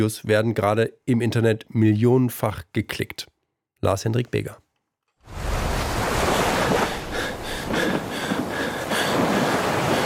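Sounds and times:
speech: 0.0 - 4.6, 5.3 - 5.5
ocean waves around a rubber boat on the open sea: 5.3 - 10.0.

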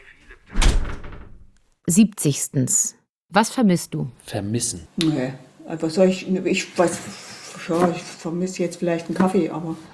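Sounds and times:
door closing with a thump: 0.5 - 1.5
speech: 1.9 - 9.9.

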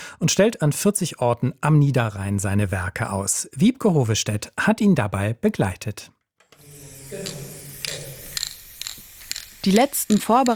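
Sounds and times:
speech: 0.2 - 6.2, 9.6 - 10.5
spray paint can hissing onto a wall: 6.6 - 10.5.

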